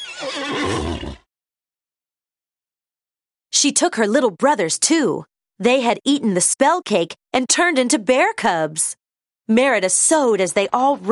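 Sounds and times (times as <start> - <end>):
horse whinnying: 0.0 - 1.3
speech: 0.2 - 1.2, 3.6 - 11.1.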